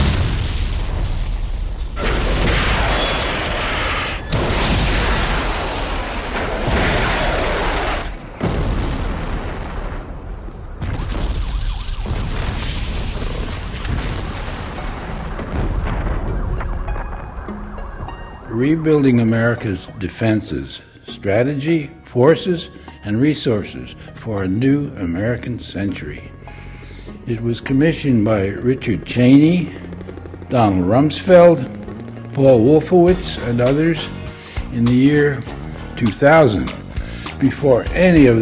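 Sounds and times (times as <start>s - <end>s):
large bomb explosions booming: 0.0s - 19.6s
speech: 18.6s - 26.3s, 27.3s - 29.8s, 30.5s - 31.8s, 32.4s - 36.8s, 37.4s - 38.4s.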